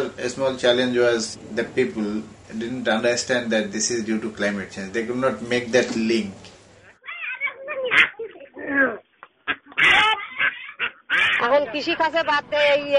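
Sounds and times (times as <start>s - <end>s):
speech: 0.1s - 6.5s, 11.6s - 12.9s
flock of ducks quacking: 7.7s - 8.7s, 9.4s - 12.4s.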